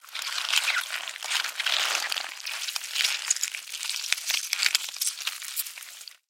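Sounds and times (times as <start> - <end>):
worms: 0.0 - 6.2.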